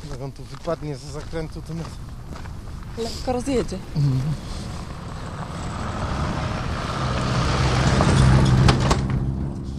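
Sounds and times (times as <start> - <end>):
speech: 0.2 - 4.7
vehicle with low engine drone rumbling past: 4.3 - 9.7.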